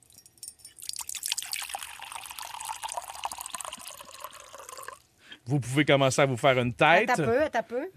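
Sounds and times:
water pouring from a kettle: 0:00.8 - 0:05.0
speech: 0:05.5 - 0:07.9.

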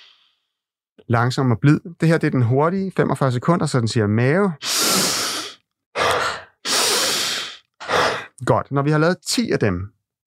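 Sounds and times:
speech: 0:01.0 - 0:04.8, 0:08.5 - 0:10.0
forceful breathing in through nose, out through mouth: 0:04.6 - 0:08.4.

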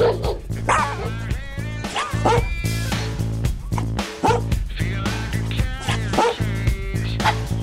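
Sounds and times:
dogs barking and yipping: 0:00.0 - 0:01.2, 0:01.9 - 0:02.7, 0:03.7 - 0:04.5, 0:05.9 - 0:06.4, 0:07.2 - 0:07.5
steady music: 0:00.0 - 0:07.6.

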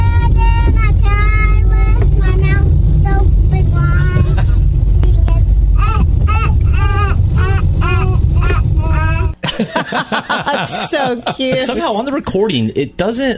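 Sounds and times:
brief noisy shuffle: 0:00.0 - 0:09.4
low rumble of a car engine: 0:00.0 - 0:09.4
young girl singing a children's song in a car: 0:00.0 - 0:09.4
laughter: 0:04.2 - 0:04.7, 0:09.4 - 0:12.1
speech: 0:10.6 - 0:13.3.

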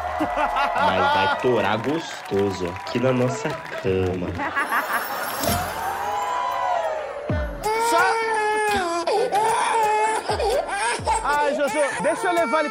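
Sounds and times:
laughter: 0:00.0 - 0:02.0, 0:03.2 - 0:06.0
speech: 0:00.2 - 0:04.8, 0:11.5 - 0:12.7
baby crying in high-pitched wails: 0:07.4 - 0:12.7.

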